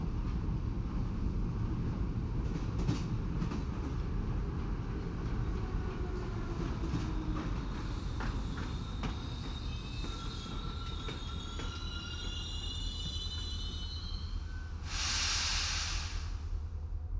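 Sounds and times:
train rumbling as it slows: 0.0s - 17.1s
train air brakes hissing: 14.8s - 16.6s.

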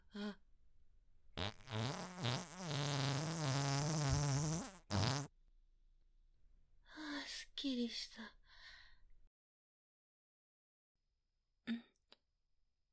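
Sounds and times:
speech: 0.1s - 0.4s
long loud buzzy fart in a closed room: 1.4s - 5.3s.

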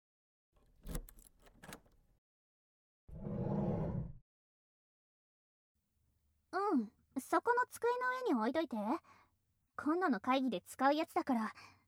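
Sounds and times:
keys jingling and clicking while unlocking a classroom door: 0.8s - 2.0s
speech: 6.7s - 9.2s, 9.8s - 11.8s.

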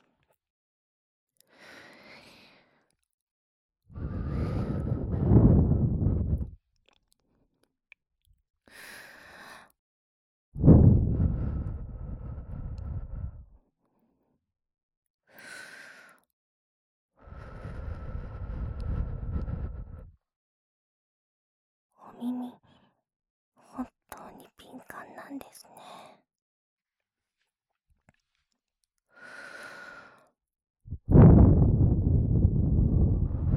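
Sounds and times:
soft breath blown gently into a listener's ear: 4.0s - 6.6s, 10.6s - 13.6s, 17.3s - 20.1s, 30.9s - 33.5s.

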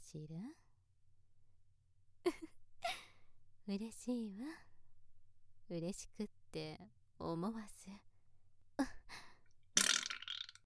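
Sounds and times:
speech: 0.1s - 0.6s, 3.7s - 4.7s, 5.7s - 8.1s, 8.8s - 9.0s
fart: 9.8s - 10.6s.

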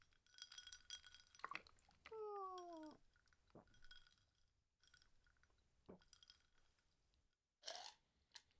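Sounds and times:
tea glasses clinking in a toast: 0.2s - 4.2s.

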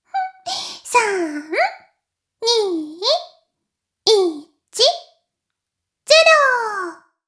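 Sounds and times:
female voice: 0.2s - 3.3s, 4.1s - 5.1s, 6.1s - 7.0s.

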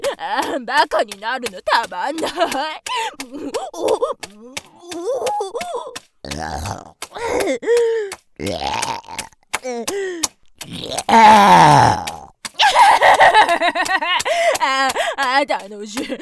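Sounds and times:
speech: 0.3s - 6.7s
person groaning: 3.7s - 12.9s
deliberate repeated loud burping: 6.3s - 7.4s, 8.4s - 9.3s, 10.6s - 12.3s
laughter: 12.6s - 15.4s.

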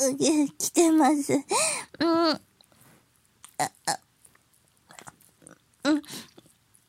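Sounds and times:
speech: 0.0s - 2.5s, 3.6s - 4.0s, 5.8s - 6.3s
person chewing and eating a beef bowl: 3.4s - 6.8s.

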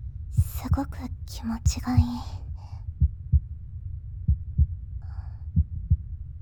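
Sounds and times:
soft low rumble: 0.0s - 6.4s
fast human heartbeat: 0.3s - 0.8s, 1.8s - 2.3s, 2.9s - 3.6s, 4.3s - 6.2s
speech: 0.6s - 2.4s.

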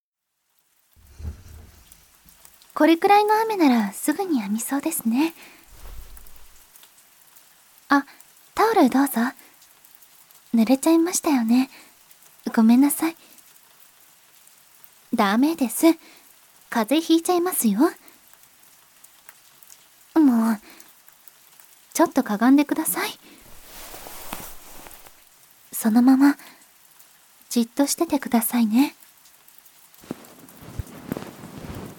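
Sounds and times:
rain sounds: 0.3s - 31.9s
ear massage ASMR: 5.7s - 6.6s, 23.3s - 25.2s
ear cleaning ASMR: 23.4s - 25.2s.

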